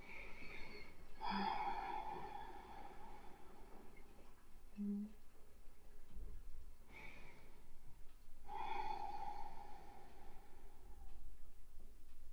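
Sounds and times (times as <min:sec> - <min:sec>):
slow breathing in and out through nose: 0:00.0 - 0:04.3, 0:06.9 - 0:11.4.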